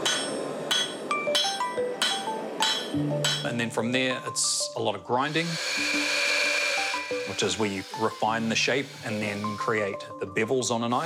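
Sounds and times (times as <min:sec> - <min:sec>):
hammer striking hot iron on an anvil, forging a knife: 0:00.0 - 0:03.7
speech: 0:03.0 - 0:06.1, 0:07.3 - 0:11.0.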